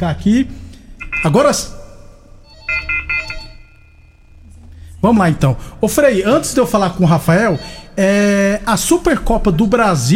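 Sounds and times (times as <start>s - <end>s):
speech: 0.0s - 1.8s, 5.0s - 10.1s
phone ringing with bright electronic pulses as a call comes in: 1.0s - 1.4s, 2.4s - 4.4s.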